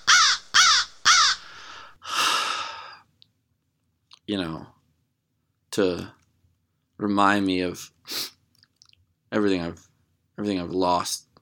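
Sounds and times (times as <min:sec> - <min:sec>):
crow cawing after flying in through a broken window: 0:00.0 - 0:01.9
speech: 0:04.3 - 0:04.8, 0:05.8 - 0:06.2, 0:07.0 - 0:08.2, 0:09.3 - 0:11.3.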